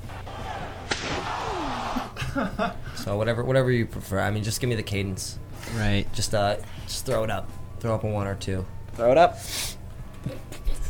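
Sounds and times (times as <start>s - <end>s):
steady hum: 0.0s - 10.8s
faint whoosh: 0.2s - 2.2s
chair-hit sound effect from a soundboard, metallic smack: 0.9s - 2.0s
laughter: 1.9s - 3.0s
speech: 2.4s - 10.6s.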